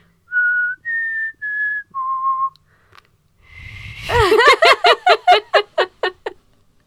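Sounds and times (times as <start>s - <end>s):
person whistling a simple tune: 0.3s - 2.6s
person laughing rhythmically: 3.9s - 6.4s.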